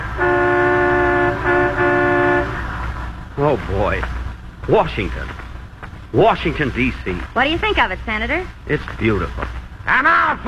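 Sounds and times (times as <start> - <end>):
traffic and bus horns blaring in long sustained blasts: 0.0 - 4.0
low rumble of street and engine noise from a sightseeing bus: 0.0 - 10.4
speech: 3.6 - 5.4, 6.1 - 10.4.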